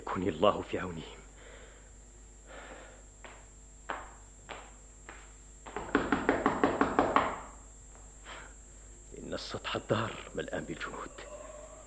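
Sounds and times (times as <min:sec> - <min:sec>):
speech: 0:00.2 - 0:01.2, 0:09.7 - 0:11.3
hard pounding knocks on a door: 0:05.7 - 0:07.6.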